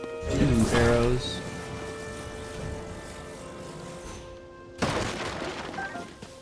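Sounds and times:
tonal in-game sound: 0.0s - 6.4s
speech: 0.2s - 1.4s
wooden box smashed in a fantasy adventure video game: 4.8s - 6.3s.

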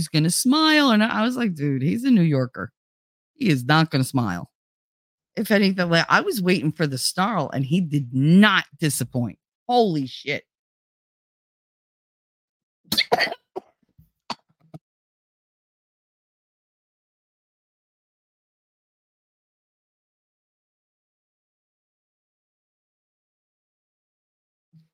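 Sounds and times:
speech: 0.0s - 2.8s, 3.4s - 4.5s, 5.4s - 10.5s, 13.1s - 13.4s
person coughing after coffee went down the wrong way: 12.9s - 13.6s.

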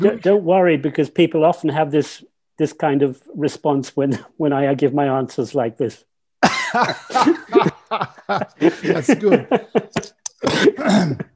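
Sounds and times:
speech: 0.0s - 6.1s, 6.7s - 11.3s
coughing and throat clearing: 6.4s - 7.8s, 9.8s - 11.3s
laughter: 6.4s - 10.2s.

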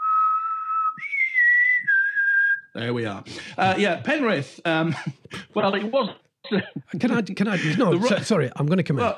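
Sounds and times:
person whistling two notes as a boarding call: 0.0s - 2.7s
speech: 2.8s - 9.1s.

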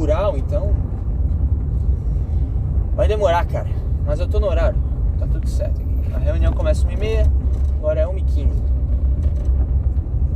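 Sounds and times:
large truck and tractor engines rumbling: 0.0s - 10.3s
speech: 3.1s - 8.8s.

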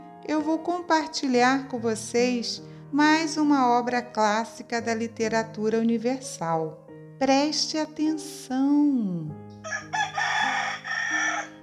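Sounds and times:
speech: 0.2s - 10.0s
rooster crowing: 9.6s - 11.6s.

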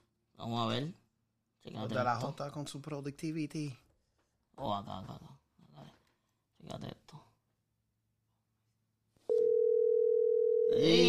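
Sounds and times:
speech: 0.5s - 1.0s, 1.6s - 3.8s, 4.6s - 5.4s, 6.6s - 7.3s, 10.7s - 11.0s
telephone dial tone at the start of a phone call: 9.3s - 10.8s.

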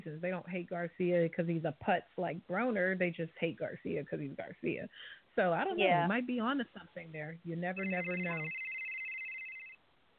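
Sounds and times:
faint hiss: 0.0s - 10.1s
speech: 0.1s - 8.7s
telephone ringing with electronic two-tone trill: 7.7s - 9.8s.

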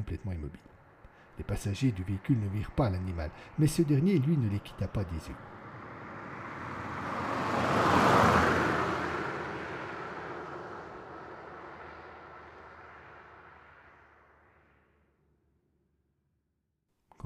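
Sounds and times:
speech: 0.0s - 0.8s, 1.4s - 5.6s
car engine approaching and stopping in front of a farm: 0.9s - 16.2s.

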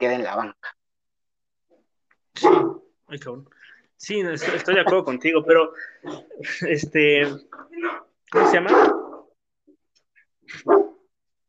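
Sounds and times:
speech: 0.0s - 0.8s, 2.4s - 9.0s, 10.5s - 10.9s
dog barking: 2.4s - 2.9s, 8.3s - 9.3s, 10.6s - 11.1s.

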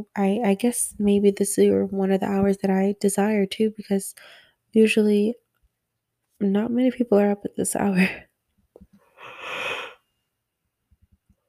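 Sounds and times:
speech: 0.0s - 5.4s, 6.4s - 8.3s
person yawning: 9.2s - 10.0s.

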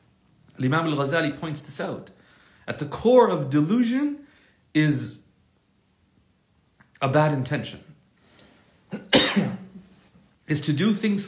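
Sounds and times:
speech: 0.6s - 5.2s, 7.0s - 7.9s, 10.5s - 11.2s
loud cough with throaty hack: 8.9s - 9.9s.

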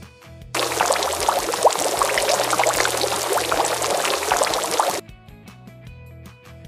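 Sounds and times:
water boiling: 0.6s - 5.0s.

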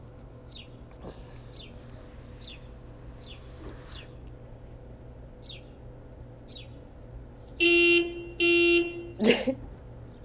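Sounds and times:
low hum: 0.0s - 10.2s
car alarm horn blasts: 7.6s - 9.2s.

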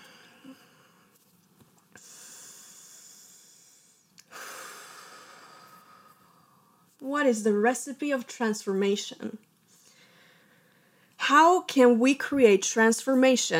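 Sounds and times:
deep breaths taken to get centered: 1.9s - 6.9s, 9.7s - 11.2s
speech: 7.0s - 9.5s, 11.3s - 13.5s.

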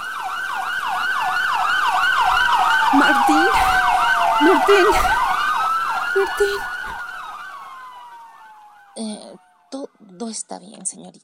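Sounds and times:
ambulance siren wailing in a rapid yelp cycle: 0.0s - 10.4s
speech: 3.0s - 5.2s, 6.2s - 6.7s, 10.3s - 11.2s
person calling out: 4.4s - 5.1s, 6.2s - 6.7s.

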